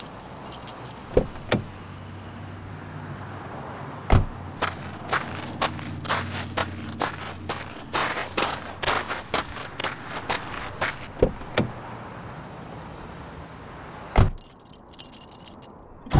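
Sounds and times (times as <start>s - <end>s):
bunch of keys jangling as they are handed over: 0.0s - 1.2s, 14.3s - 15.8s
low steady vehicle hum: 0.0s - 16.1s.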